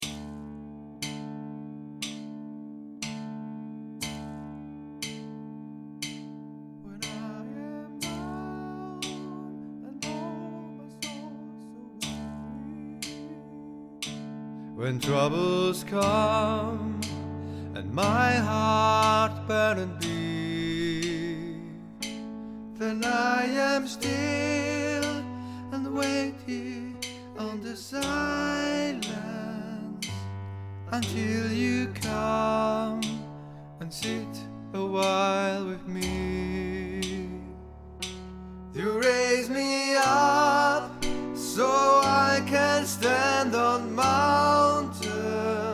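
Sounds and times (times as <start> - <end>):
tenor singing along: 6.8 - 14.0, 14.8 - 22.1, 22.8 - 30.3, 30.9 - 37.6, 38.7 - 45.7.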